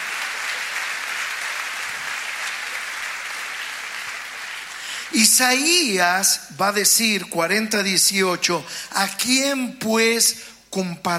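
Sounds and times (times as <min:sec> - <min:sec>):
crowd applauding: 0:00.0 - 0:05.4
speech: 0:05.1 - 0:11.1.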